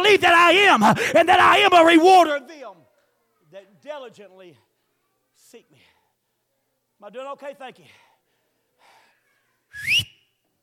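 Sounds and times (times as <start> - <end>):
speech: 0.1 - 2.8, 3.5 - 4.6, 5.4 - 5.9, 7.0 - 8.1
person whistling sliding upward in pitch: 9.7 - 10.4.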